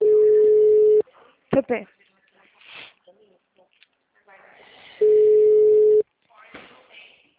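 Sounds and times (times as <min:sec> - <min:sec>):
steady telephone tone after a dropped call: 0:00.0 - 0:01.0, 0:05.0 - 0:06.0
speech: 0:01.7 - 0:02.1.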